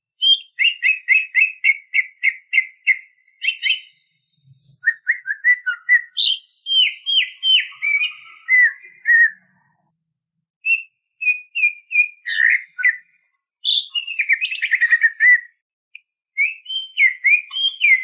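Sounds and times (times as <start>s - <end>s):
greater green leafbird spaced chirps: 0.2s - 9.9s, 10.6s - 15.6s, 16.4s - 18.0s.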